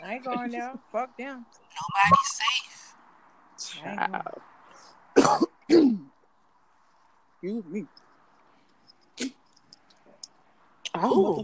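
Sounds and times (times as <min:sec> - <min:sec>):
speech: 0:00.2 - 0:02.8, 0:03.6 - 0:04.5, 0:05.3 - 0:06.1, 0:07.4 - 0:08.0, 0:09.2 - 0:09.4, 0:11.0 - 0:11.4
throat clearing: 0:05.2 - 0:06.1.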